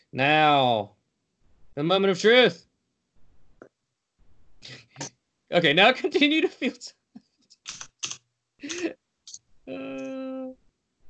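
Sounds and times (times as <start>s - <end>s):
speech: 0.1s - 1.0s, 1.8s - 2.7s, 4.6s - 7.0s, 8.6s - 9.0s
clacking keystrokes on a computer keyboard: 7.7s - 8.8s.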